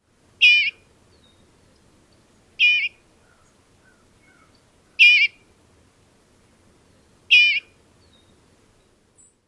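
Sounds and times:
Eastern Bluebird turalee call: 0:00.4 - 0:01.8, 0:02.6 - 0:05.5, 0:07.3 - 0:08.4.

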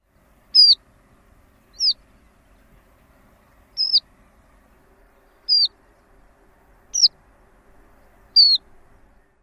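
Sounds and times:
Horned Lark calls: 0:00.6 - 0:00.8, 0:01.7 - 0:02.0, 0:03.8 - 0:04.0, 0:05.4 - 0:05.8, 0:06.9 - 0:07.1, 0:08.3 - 0:08.6.

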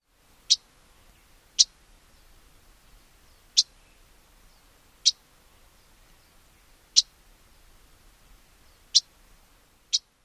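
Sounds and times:
Lucy's warbler calls: 0:00.4 - 0:07.7.

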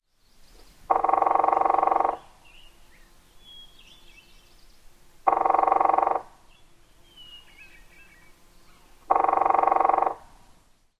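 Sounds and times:
red-shafted flicker drumming: 0:00.9 - 0:02.3, 0:05.2 - 0:06.3, 0:09.0 - 0:10.3.

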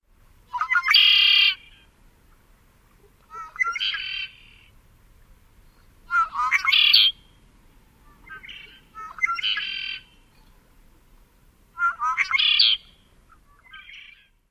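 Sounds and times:
red-winged blackbird songs: 0:00.5 - 0:01.9, 0:03.3 - 0:04.7, 0:05.6 - 0:10.7, 0:11.8 - 0:14.4.

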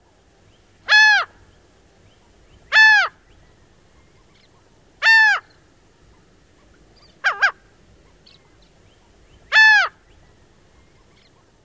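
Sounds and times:
Laughing Gull typical kyow calls: 0:00.9 - 0:01.4, 0:02.7 - 0:03.2, 0:07.1 - 0:07.6, 0:09.5 - 0:10.0.

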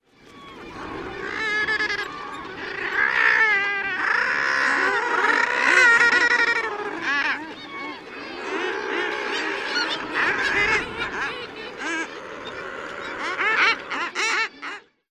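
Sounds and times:
Common Murre colony calling: 0:00.1 - 0:15.0.

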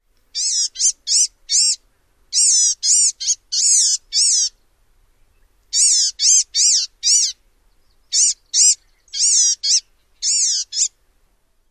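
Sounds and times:
calls: 0:00.4 - 0:01.8, 0:02.4 - 0:04.6, 0:05.7 - 0:07.4, 0:08.1 - 0:11.0.

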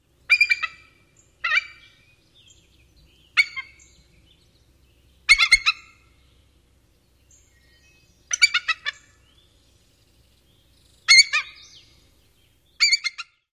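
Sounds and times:
perched adult eagle alarm calls: 0:00.3 - 0:02.0, 0:03.2 - 0:04.0, 0:05.2 - 0:06.2, 0:07.6 - 0:09.3, 0:11.0 - 0:11.9, 0:12.8 - 0:13.5.

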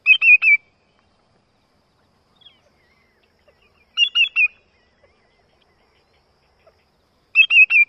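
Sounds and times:
greater yellowlegs tu tu tu calls: 0:02.4 - 0:07.8.

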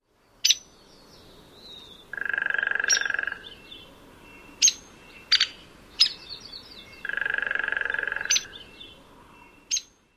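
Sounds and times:
calls: 0:01.8 - 0:10.0.

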